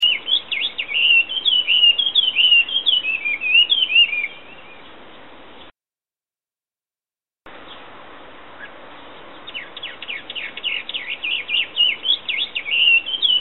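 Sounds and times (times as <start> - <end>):
unidentified songbird singing in a garden: 0.0 - 5.7, 8.6 - 13.4.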